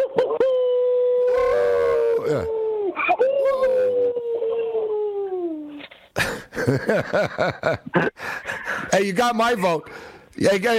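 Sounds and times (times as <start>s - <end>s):
person imitating a wolf howl: 0.4s - 5.8s
speech: 2.3s - 2.6s, 6.7s - 10.7s
laughter: 6.2s - 8.8s.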